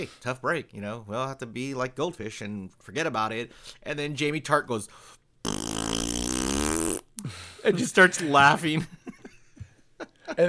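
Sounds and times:
speech: 0.0s - 5.8s, 7.2s - 9.1s, 10.3s - 10.4s
short breathy tail: 5.5s - 7.0s
voice imitating a fart: 5.5s - 7.1s.

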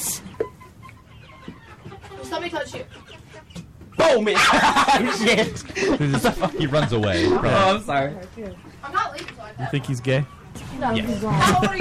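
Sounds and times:
chickens clucking in a coop: 0.0s - 11.8s
speech: 2.3s - 3.0s, 4.0s - 11.8s
laughter: 4.2s - 7.8s, 11.2s - 11.8s.

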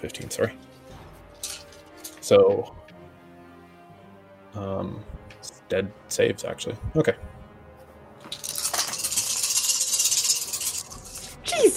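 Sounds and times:
speech: 0.0s - 0.8s, 2.3s - 2.8s, 4.5s - 7.4s
many dice rolling in a tabletop role-playing game: 1.4s - 1.8s, 8.3s - 11.4s.

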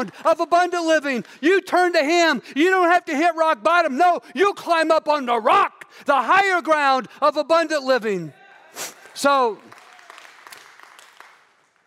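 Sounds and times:
speech: 0.0s - 9.8s
audience hand clapping: 8.9s - 11.8s.

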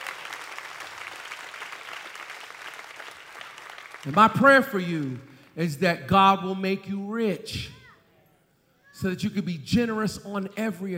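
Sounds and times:
audience of many people applauding: 0.0s - 5.6s
speech: 4.0s - 7.8s, 9.0s - 10.9s.

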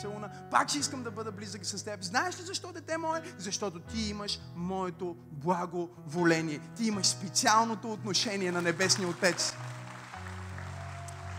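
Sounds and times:
speech: 0.0s - 9.6s
audience clapping: 8.4s - 11.3s.

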